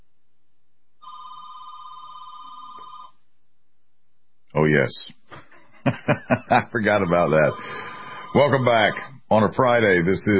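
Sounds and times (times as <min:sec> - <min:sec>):
telephone ringing with electronic tone: 0:01.0 - 0:03.2, 0:07.0 - 0:09.1
speech: 0:04.6 - 0:05.2, 0:05.8 - 0:10.3
laughter: 0:05.3 - 0:09.1.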